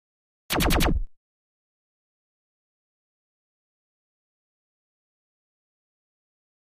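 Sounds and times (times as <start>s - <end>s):
laser quadruple blasts: 0.5s - 1.1s.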